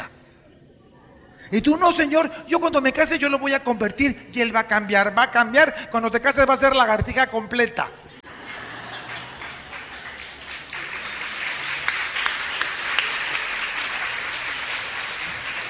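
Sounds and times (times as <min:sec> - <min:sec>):
laughter: 0:00.0 - 0:15.6
speech: 0:01.5 - 0:08.1
audience applause: 0:08.3 - 0:15.6.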